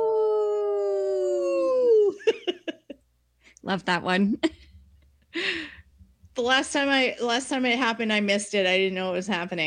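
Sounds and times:
wolf howling: 0:00.0 - 0:02.2
speech: 0:03.6 - 0:04.6, 0:06.4 - 0:09.6.

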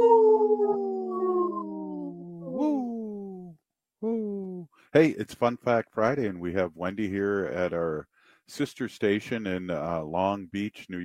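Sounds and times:
wolf howling: 0:00.0 - 0:02.7
speech: 0:04.9 - 0:11.0.

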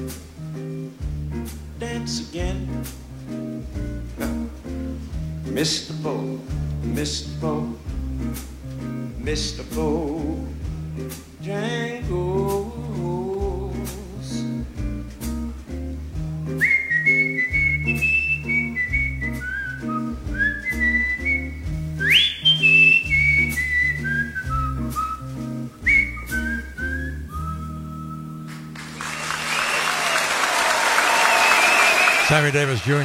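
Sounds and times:
music playing: 0:00.0 - 0:33.0
speech: 0:05.6 - 0:07.8, 0:09.2 - 0:12.2, 0:32.5 - 0:33.0
large concert crowd applauding: 0:28.5 - 0:33.0
cheering whistles: 0:28.8 - 0:33.0.

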